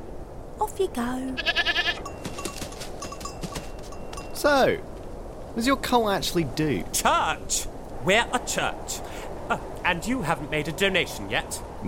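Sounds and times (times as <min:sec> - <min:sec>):
speech: 0:00.6 - 0:01.8, 0:04.4 - 0:04.9, 0:05.6 - 0:11.8
goats bleating as they are released during a religious ceremony: 0:01.4 - 0:02.0.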